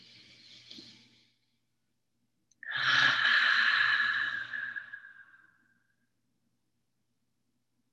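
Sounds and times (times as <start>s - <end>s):
deep inhale and exhale breathing: 2.6s - 5.8s.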